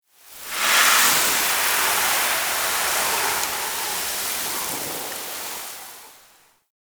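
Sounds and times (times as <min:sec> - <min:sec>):
sand falling in a narrow room after a puzzle release: 0:00.2 - 0:06.4.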